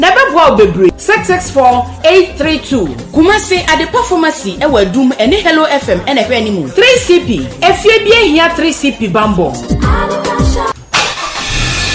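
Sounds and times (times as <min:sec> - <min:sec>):
speech: 0:00.0 - 0:10.7
car engine starting and revving: 0:11.0 - 0:11.9.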